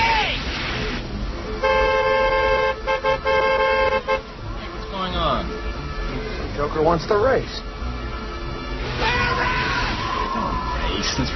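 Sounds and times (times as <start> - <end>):
highway road rumble: 0.0 - 11.3
car horn blasts on a dark, unlit highway: 1.5 - 4.5
speech: 6.8 - 7.8, 11.2 - 11.3.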